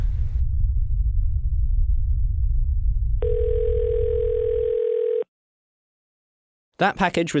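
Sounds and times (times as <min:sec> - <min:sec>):
low continuous rumbling drone: 0:00.0 - 0:04.3
electronic phone alert tone for a text message or call: 0:03.2 - 0:05.3
speech: 0:06.8 - 0:07.3.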